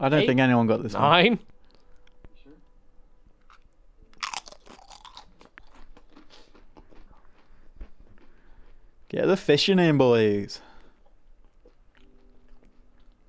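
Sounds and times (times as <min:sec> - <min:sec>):
speech: 0:00.0 - 0:01.5, 0:09.1 - 0:10.7
crunchy chewing of Pringles potato chips: 0:03.4 - 0:09.0, 0:10.7 - 0:13.2.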